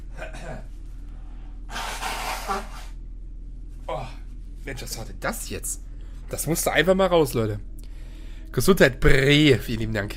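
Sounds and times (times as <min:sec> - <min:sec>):
long forceful nose blow: 0:01.7 - 0:03.0
quick sniff or breath: 0:01.7 - 0:03.0
speech: 0:04.7 - 0:07.7, 0:08.5 - 0:10.1.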